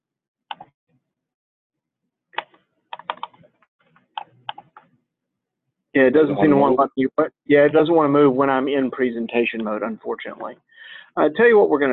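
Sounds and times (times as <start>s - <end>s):
computer keyboard keys pressed to advance presentation slides: 0.5s - 0.7s, 2.4s - 3.4s
speech: 6.0s - 11.9s.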